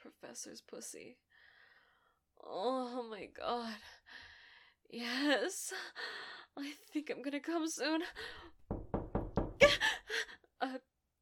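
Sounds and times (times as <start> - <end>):
speech: 0.4 - 1.3, 2.4 - 4.3, 4.9 - 8.6
firm knocking on an office door: 8.6 - 9.8.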